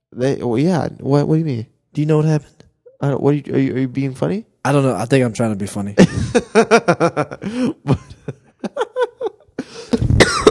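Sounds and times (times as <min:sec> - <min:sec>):
speech: 0:00.2 - 0:08.1
laughter: 0:06.0 - 0:10.0
person coughing close to the microphone: 0:09.6 - 0:10.4.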